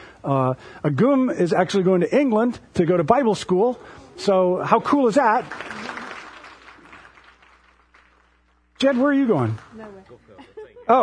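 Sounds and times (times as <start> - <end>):
speech: 0.2 - 5.9, 8.8 - 11.0
mid-sized audience clapping: 4.9 - 9.9
laughter: 10.2 - 11.0.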